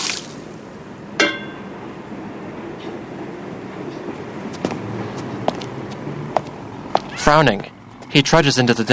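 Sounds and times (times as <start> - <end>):
water pouring out of tin flower containers: 0.0 - 0.4
sharp metallic clank: 1.2 - 1.8
speech: 7.3 - 8.9.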